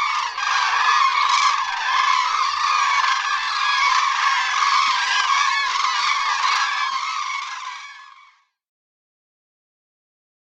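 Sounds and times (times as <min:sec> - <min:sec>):
common crane chorus trumpeting: 0:00.0 - 0:08.2.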